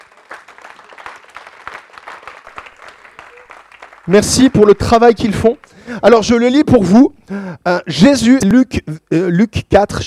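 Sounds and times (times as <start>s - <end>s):
crowd applauding the technical team: 0.0s - 6.0s
speech: 4.1s - 10.0s.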